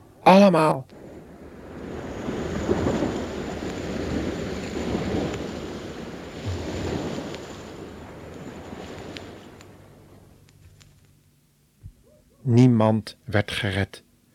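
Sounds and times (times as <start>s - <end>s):
speech: 0.2s - 1.0s, 12.5s - 14.0s
heavy sea waves crashing: 0.2s - 10.4s.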